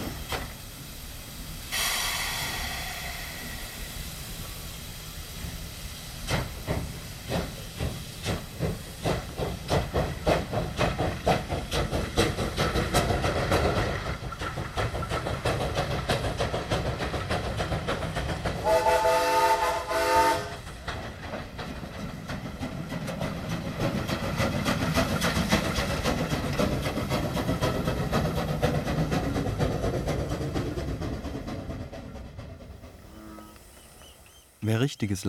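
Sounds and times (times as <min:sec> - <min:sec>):
1920s steam locomotives chuffing: 0:00.0 - 0:35.2
loaded wagons rumbling and clanking: 0:06.2 - 0:18.7, 0:20.5 - 0:35.2
speech: 0:34.7 - 0:35.2.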